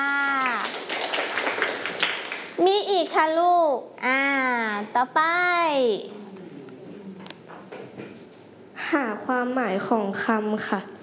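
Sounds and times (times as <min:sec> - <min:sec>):
children clapping for a classmate in class: 0:00.0 - 0:02.6
speech: 0:03.1 - 0:06.2, 0:08.9 - 0:11.0.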